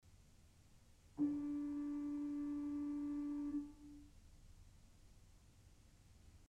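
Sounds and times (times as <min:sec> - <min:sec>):
Principal 4' organ pipe sounding D: 0:01.2 - 0:04.1.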